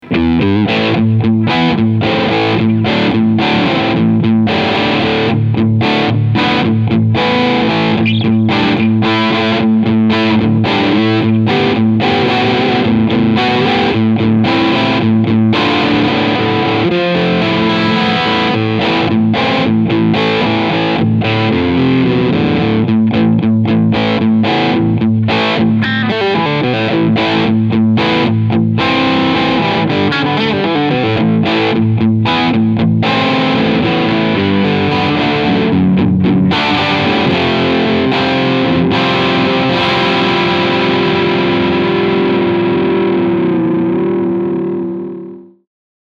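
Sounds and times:
crunch guitar tone with bridge and middle pickups: 0.0 - 45.6.

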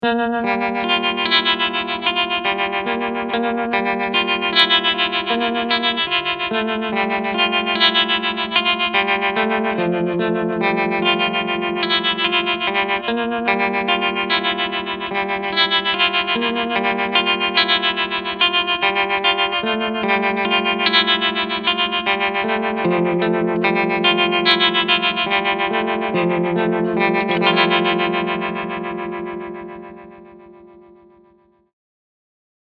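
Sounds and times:
guitar through a tremolo amplifier: 0.0 - 31.6.

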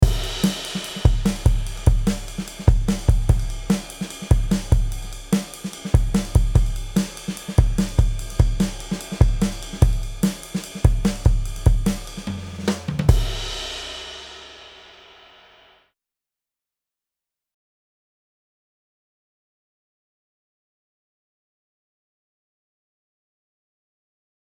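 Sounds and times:
drums: 0.0 - 15.8.

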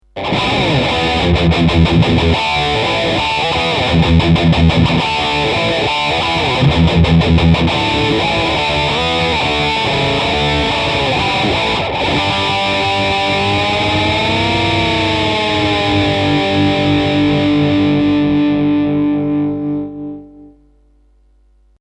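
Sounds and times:
heavy guitar riff: 0.0 - 20.7.

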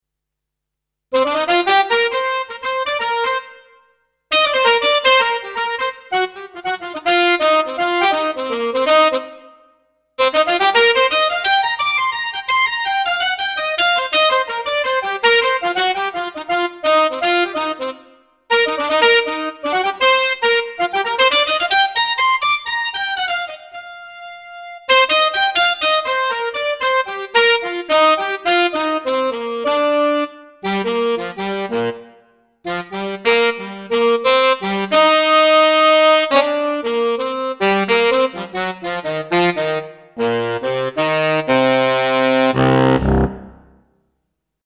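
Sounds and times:
Kurzweil SP7 saxophone ensemble: 1.2 - 3.6, 4.3 - 9.5, 10.2 - 43.8.

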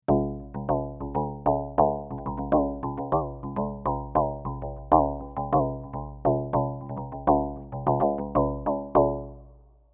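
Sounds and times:
drum: 0.1 - 9.4.

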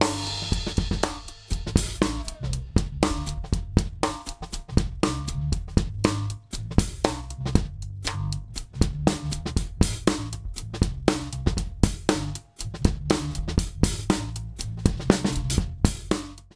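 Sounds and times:
clicky bass drum: 0.0 - 16.5.

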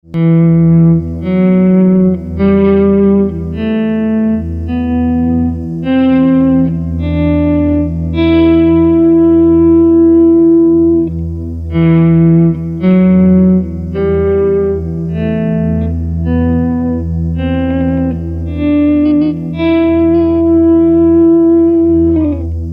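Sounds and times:
E minor scale: 0.2 - 22.6.

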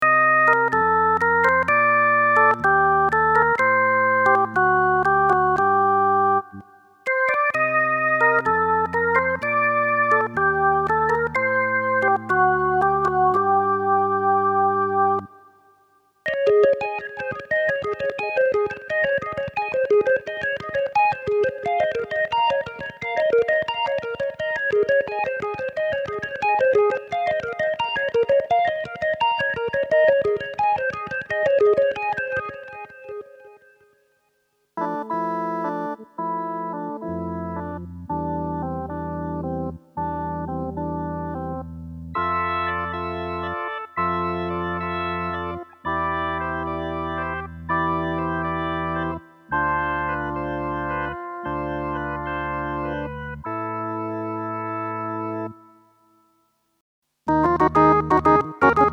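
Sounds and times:
Hammond XK-4 organ with chorus, delay, phaser and flanger effects: 0.0 - 15.7, 16.3 - 33.8, 34.8 - 55.8, 57.3 - 58.9.

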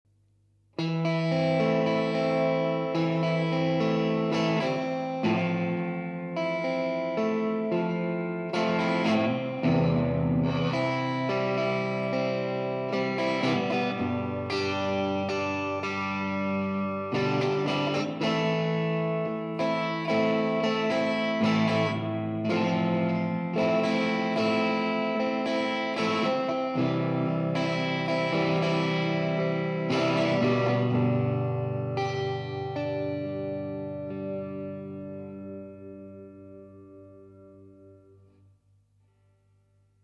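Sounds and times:
SX Strat electric guitar through a VOX amplifier: 0.7 - 38.4.

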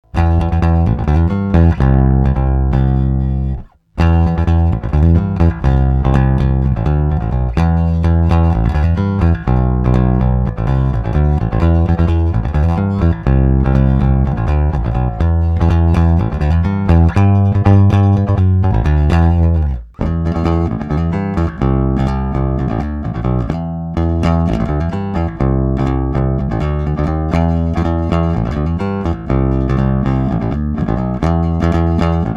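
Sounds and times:
rock played on a Rickenbacker with a plectrum through an Ampeg: 0.0 - 32.3.

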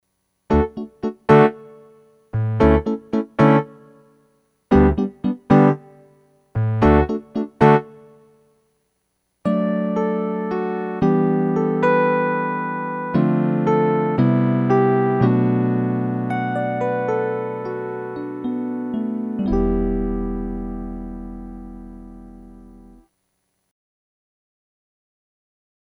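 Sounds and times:
electric piano on a MIDI keyboard: 0.5 - 8.3, 9.4 - 23.1.

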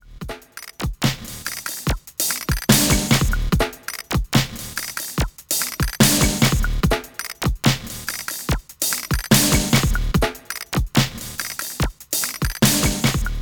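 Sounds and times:
Kaossilator synthesizer loop: 1.4 - 7.4, 8.0 - 13.4.

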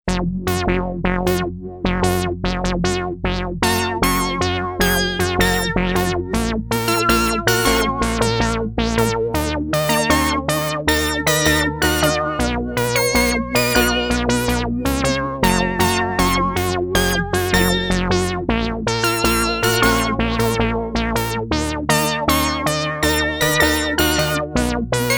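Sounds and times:
synthesizer with independent filter LFO and vibrato: 0.1 - 25.1.

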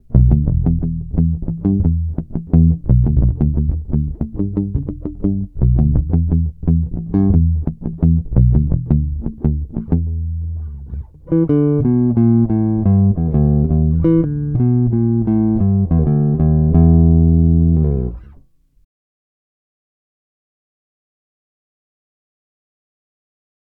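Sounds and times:
bass guitar pick muted line: 0.0 - 18.4.

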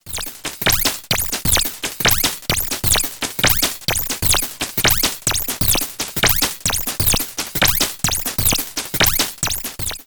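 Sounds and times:
FM synthesis and aliasing beat: 0.0 - 10.0.

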